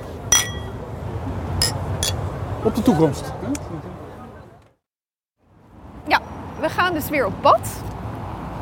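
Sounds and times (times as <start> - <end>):
glasses clinking in a toast: 0.3 - 0.8, 1.6 - 2.2
speech: 2.6 - 4.0, 6.8 - 7.9.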